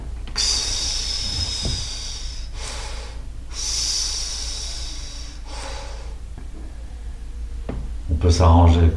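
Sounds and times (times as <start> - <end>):
person exhaling during a breathing exercise for running: 0.4 - 6.2
speech: 8.3 - 8.9.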